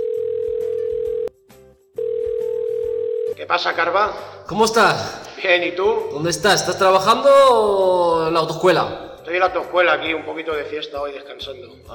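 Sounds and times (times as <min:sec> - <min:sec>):
telephone dial tone while placing a call: 0:00.0 - 0:01.3, 0:02.0 - 0:03.3
speech: 0:03.4 - 0:11.9.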